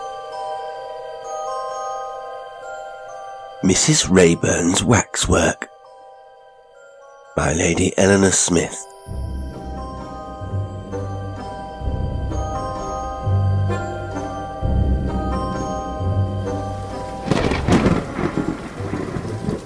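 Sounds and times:
speech: 0:03.6 - 0:05.7, 0:07.4 - 0:09.2
deep thunder rumbles and crash: 0:09.1 - 0:19.6
heavy rain pouring: 0:09.7 - 0:19.6.

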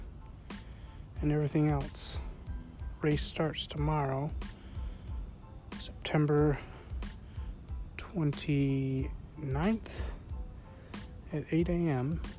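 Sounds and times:
crickets chirping at night: 0:00.0 - 0:12.3
speech: 0:01.2 - 0:02.3, 0:03.0 - 0:04.6, 0:06.1 - 0:06.7, 0:08.1 - 0:10.1, 0:11.3 - 0:12.3.

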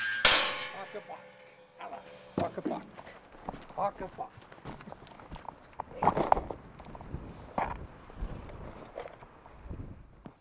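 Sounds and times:
sharp knocks: 0:00.0 - 0:03.6
faint noise: 0:00.0 - 0:10.3
horse hooves clopping on hard ground on Menorca: 0:00.0 - 0:10.3
speech: 0:00.9 - 0:04.8, 0:06.0 - 0:06.4.

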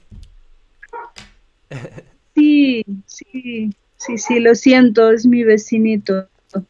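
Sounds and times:
small dog barking: 0:00.9 - 0:01.2
speech: 0:01.7 - 0:02.1, 0:03.5 - 0:06.6.

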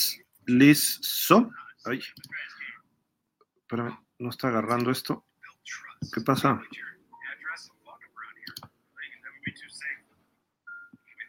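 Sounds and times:
speech: 0:00.0 - 0:02.5, 0:03.7 - 0:06.9
sharp computer mouse clicks: 0:08.4 - 0:08.7.

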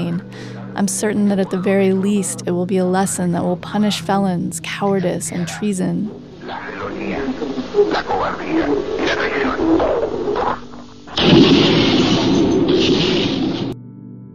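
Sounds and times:
tinny radio-quality voice speaking in a radio broadcast: 0:00.0 - 0:10.7
speech: 0:00.8 - 0:11.8
explosion in a radio broadcast: 0:08.9 - 0:13.8.

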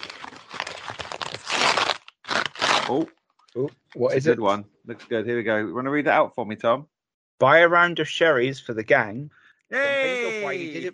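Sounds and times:
paper envelope being torn open: 0:00.0 - 0:03.1
speech: 0:02.9 - 0:10.9
laughter: 0:09.7 - 0:10.9.

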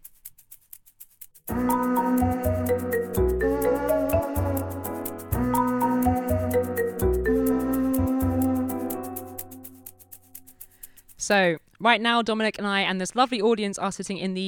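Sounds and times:
upbeat instrumental podcast jingle with bouncy bass line and ticking percussion: 0:01.5 - 0:09.9
speech: 0:11.3 - 0:14.4.

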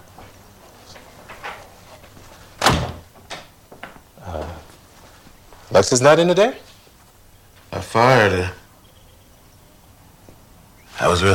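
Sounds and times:
shuffling and scraping sounds of movement: 0:00.0 - 0:07.9
door pushed shut: 0:02.6 - 0:03.6
speech: 0:05.7 - 0:06.6, 0:08.0 - 0:08.6, 0:11.1 - 0:11.3.

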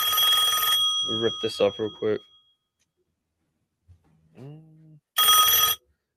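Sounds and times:
telephone ringing: 0:00.0 - 0:02.6, 0:05.2 - 0:05.9
speech: 0:01.1 - 0:02.3.

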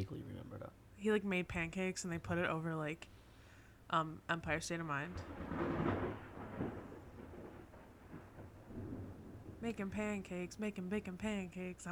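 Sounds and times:
speech: 0:00.0 - 0:03.2, 0:03.9 - 0:05.9, 0:09.6 - 0:11.9
low rumbling thunder: 0:05.0 - 0:11.1
steady rain: 0:05.1 - 0:10.4.

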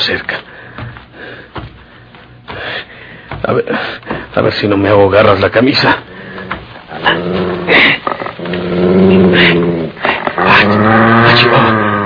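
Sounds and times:
speech: 0:00.0 - 0:00.4, 0:03.5 - 0:06.1, 0:07.0 - 0:09.8
dog growling and whimpering: 0:06.9 - 0:12.0.

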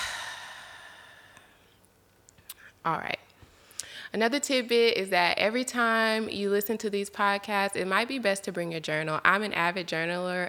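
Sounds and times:
deep breath exhaled slowly through the mouth during a guided breathing exercise: 0:00.0 - 0:01.5
speech: 0:02.8 - 0:03.2, 0:04.1 - 0:10.4.

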